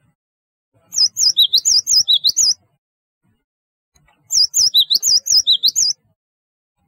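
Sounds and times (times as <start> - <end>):
Java sparrow song: 0.8 - 3.4, 4.0 - 6.2.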